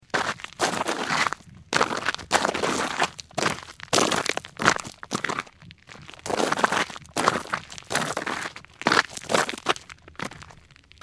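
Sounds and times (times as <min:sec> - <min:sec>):
footsteps sliding while walking on gravel: 0:00.1 - 0:10.7.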